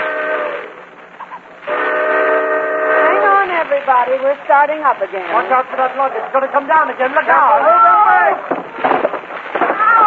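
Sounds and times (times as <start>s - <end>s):
railroad train whistle blasts: 0.0s - 0.8s, 1.7s - 3.4s
speech: 4.0s - 9.0s.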